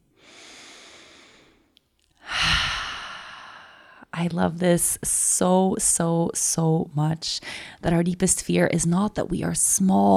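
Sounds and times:
deep breath: 0.2 - 4.1
speech: 4.2 - 10.1.

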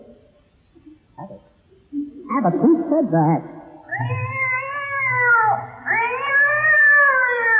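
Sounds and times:
speech: 2.4 - 4.1
cat yowling after its tail is stepped on: 3.9 - 7.5.

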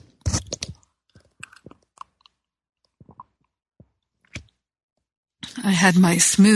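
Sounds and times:
short wet mouth and swallowing sounds: 0.0 - 4.7
sipping tea: 0.0 - 4.7
speech: 5.6 - 6.5.

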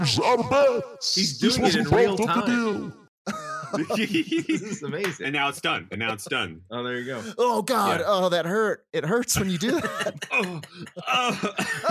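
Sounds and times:
laughter: 0.0 - 7.5, 9.2 - 11.8
speech: 0.0 - 11.8
person coughing harshly and raspily: 9.7 - 11.8.

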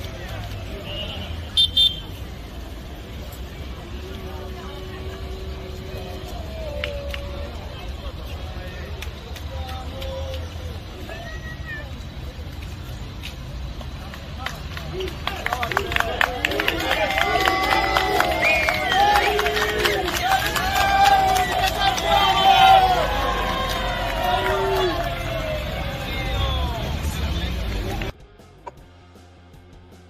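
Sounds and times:
team bus low engine rumble: 0.0 - 30.0
small outdoor crowd at a stadium cheering and whistling: 0.7 - 2.2, 4.0 - 8.9, 14.9 - 28.0.

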